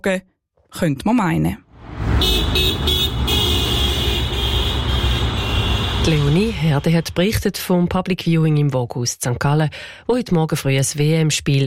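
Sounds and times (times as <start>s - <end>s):
speech: 0.0s - 1.6s, 6.0s - 11.6s
cars passing on a street: 1.7s - 7.4s
low engine rumble of street traffic: 1.7s - 7.4s.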